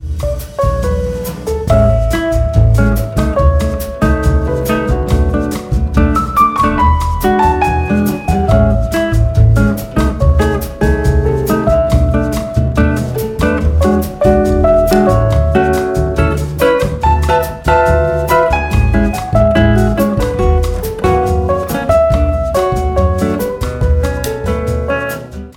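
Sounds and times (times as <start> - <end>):
piano: 0.0 - 25.5
string bass: 0.0 - 25.5.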